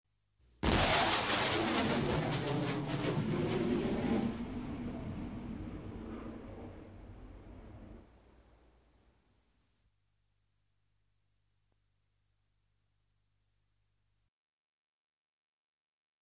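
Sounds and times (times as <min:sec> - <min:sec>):
jet plane taking off: 0:01.0 - 0:08.1.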